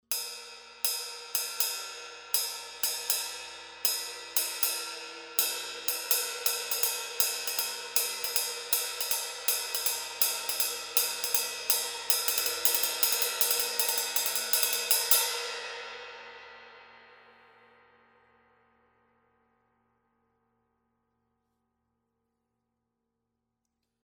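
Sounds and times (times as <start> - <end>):
18-inch Zildjian Uptown ride cymbal playing a ride pattern: 0.1 - 15.8.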